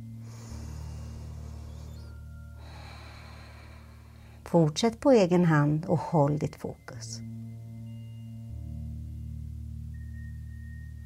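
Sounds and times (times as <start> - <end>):
slow deep breathing through the left nostril: 0.0 - 4.4
low steady hum: 0.0 - 11.0
speech: 4.5 - 7.4.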